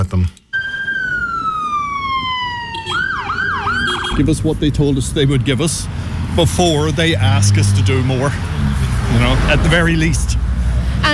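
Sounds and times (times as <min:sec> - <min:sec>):
speech: 0:00.0 - 0:00.4, 0:04.2 - 0:10.4
street rumble: 0:00.0 - 0:11.1
ambulance siren at a paramedics' picket outside a hospital: 0:00.5 - 0:04.6.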